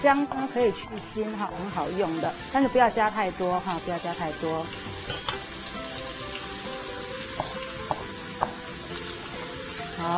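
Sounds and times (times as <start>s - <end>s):
speech: 0.0s - 5.5s
meat pan-frying in a wok: 0.0s - 10.1s
utensil tapping the pan: 4.6s - 5.6s, 7.2s - 8.7s.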